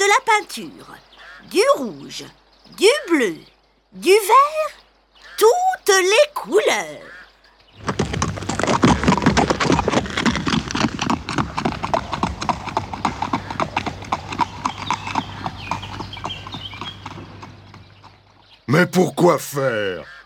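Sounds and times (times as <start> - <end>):
speech: 0.1 - 4.8, 5.4 - 7.2, 18.7 - 20.2
horse hooves clip-clopping at a walk: 7.7 - 18.7.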